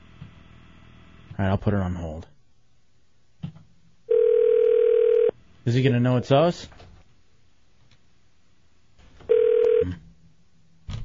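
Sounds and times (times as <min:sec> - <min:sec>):
speech: 0:01.4 - 0:02.3, 0:05.7 - 0:06.8
electronic phone ring tone over a quiet line: 0:04.1 - 0:05.4, 0:09.3 - 0:10.0.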